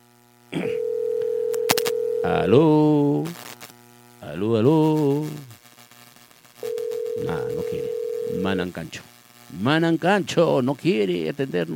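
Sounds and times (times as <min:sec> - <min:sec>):
telephone tone as an outgoing call is placed: 0:00.6 - 0:02.6, 0:06.6 - 0:08.6
speech: 0:02.2 - 0:03.4, 0:04.3 - 0:05.5, 0:07.2 - 0:11.7.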